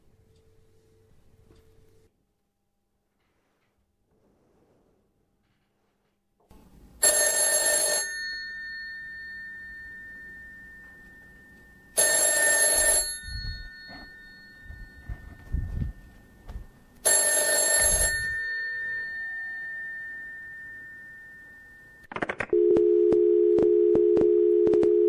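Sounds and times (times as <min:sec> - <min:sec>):
old-fashioned telephone bell ringing: 0:07.0 - 0:15.5, 0:17.0 - 0:22.0, 0:22.6 - 0:25.0.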